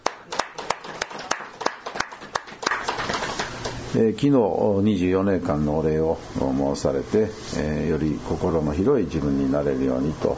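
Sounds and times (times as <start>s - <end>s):
audience applause for a birthday: 0.0s - 3.8s
speech: 3.9s - 10.3s.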